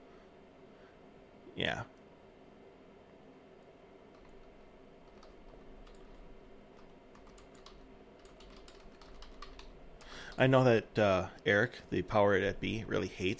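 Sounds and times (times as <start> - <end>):
steady low hum: 0.0 - 13.3
speech: 1.6 - 2.0, 10.4 - 13.3
typing on a computer keyboard: 4.1 - 6.2, 6.8 - 10.4.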